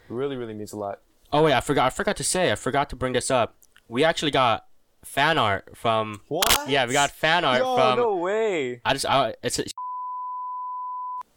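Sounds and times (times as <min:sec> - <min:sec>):
speech: 0:00.1 - 0:09.8
high-pitched censor beep: 0:09.8 - 0:11.2.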